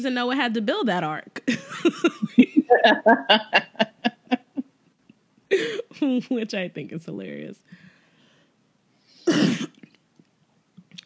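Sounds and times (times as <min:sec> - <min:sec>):
speech: 0:00.0 - 0:03.9, 0:05.5 - 0:07.9, 0:09.3 - 0:09.8
laughter: 0:01.7 - 0:04.6
harsh cough: 0:09.2 - 0:09.8.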